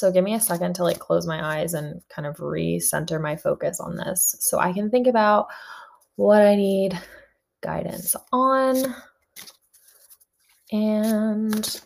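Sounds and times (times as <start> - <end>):
speech: 0.0 - 9.5, 10.7 - 11.8
deck of tarot cards being shuffled: 8.7 - 11.8.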